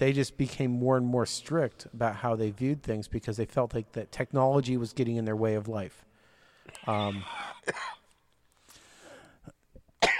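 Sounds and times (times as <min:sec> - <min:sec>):
speech: 0:00.0 - 0:06.1, 0:06.8 - 0:08.0
throat-clearing rasp: 0:06.7 - 0:08.2, 0:09.4 - 0:10.1
person coughing roughly: 0:06.8 - 0:08.2, 0:10.0 - 0:10.1.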